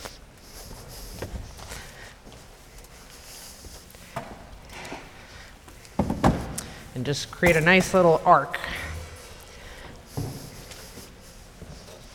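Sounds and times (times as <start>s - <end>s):
shuffling footsteps of children across a floor: 0.0s - 12.1s
chairs carried forward by children knocking and clunking: 6.0s - 6.7s
speech: 7.0s - 8.8s.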